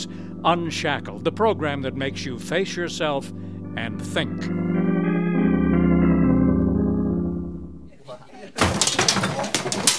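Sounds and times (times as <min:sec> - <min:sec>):
sustained musical chord: 0:00.0 - 0:07.9
speech: 0:00.4 - 0:04.8
display objects toppling and clattering to the floor: 0:08.6 - 0:09.9.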